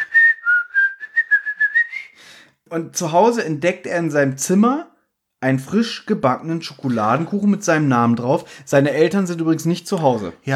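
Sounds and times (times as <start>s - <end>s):
cartoon character whistling a cheerful tune: 0.0s - 2.2s
speech: 2.7s - 10.5s.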